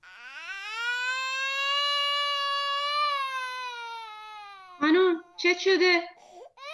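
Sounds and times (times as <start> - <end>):
young boy screaming and crying: 0.0 - 4.8
speech: 4.8 - 6.1.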